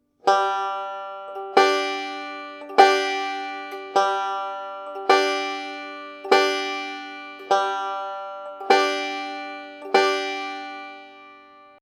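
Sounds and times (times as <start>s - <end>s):
pinched waltz pattern: 0.2s - 11.8s.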